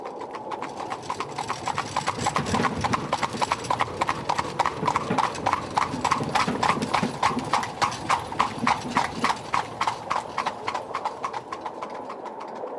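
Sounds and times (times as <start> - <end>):
hooves of a team of four horses clip-clopping: 0.0 - 12.7
horse-drawn coach rolling past: 0.0 - 12.7.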